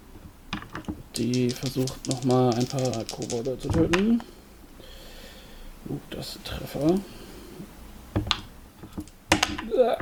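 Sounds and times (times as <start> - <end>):
dice clattering across a hard surface: 0.6 - 4.1, 6.8 - 7.0
speech: 1.2 - 4.4, 5.9 - 7.2.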